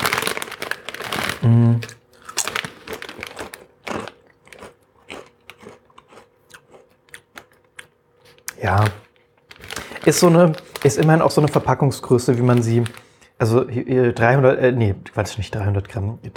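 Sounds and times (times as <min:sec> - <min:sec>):
potato chips crunching as they are bitten and chewed: 0:00.0 - 0:13.1
speech: 0:01.4 - 0:02.0, 0:08.6 - 0:09.0, 0:10.0 - 0:16.3.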